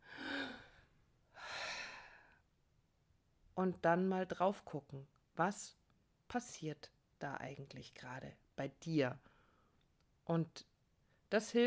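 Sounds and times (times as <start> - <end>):
slow deep breath drawn in: 0.0 - 2.4
speech: 3.6 - 9.3, 10.3 - 10.7, 11.3 - 11.6.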